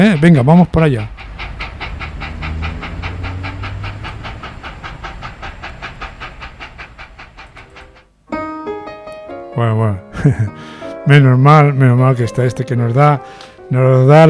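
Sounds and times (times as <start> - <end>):
speech: 0.0 - 1.3, 9.6 - 14.2
train running on rails: 0.0 - 8.2.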